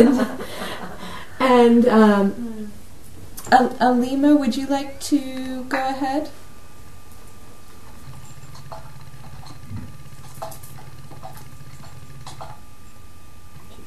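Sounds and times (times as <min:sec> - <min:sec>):
speech: 0:00.0 - 0:00.4, 0:01.5 - 0:02.5, 0:03.5 - 0:06.4
steady low electrical hum: 0:00.0 - 0:13.8
keyboard typing: 0:07.8 - 0:13.0.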